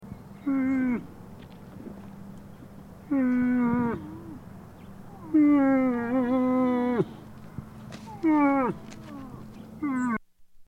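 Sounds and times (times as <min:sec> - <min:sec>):
baby moose bleating: 0:03.1 - 0:04.4, 0:05.1 - 0:07.2, 0:08.0 - 0:10.2.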